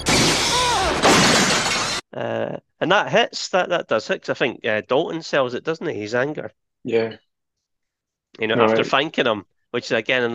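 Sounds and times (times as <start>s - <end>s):
glass doors smashing shut and shattering: 0.0s - 2.0s
speech: 2.5s - 7.3s, 8.4s - 10.3s.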